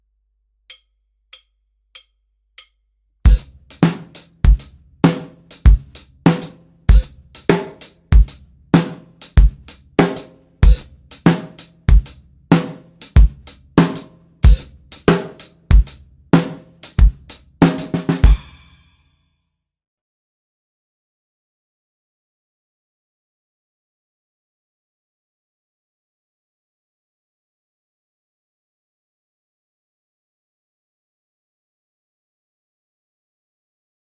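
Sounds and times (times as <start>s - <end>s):
drum rhythm: 3.3s - 18.9s.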